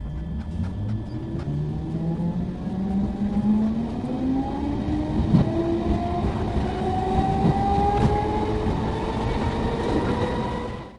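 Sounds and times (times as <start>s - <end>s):
train leaving: 0.0s - 10.9s.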